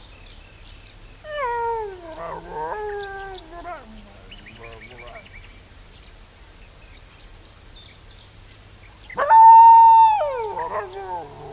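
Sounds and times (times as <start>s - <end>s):
dingo howling: 1.3s - 5.2s, 9.2s - 11.5s.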